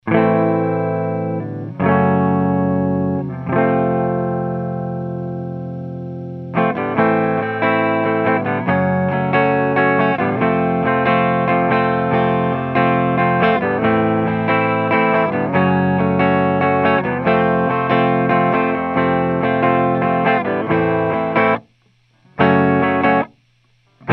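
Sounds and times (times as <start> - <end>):
clean electric guitar through amp, recorded with Lauten Audio Horizon LT-321 tube condenser: 0.0 - 24.1.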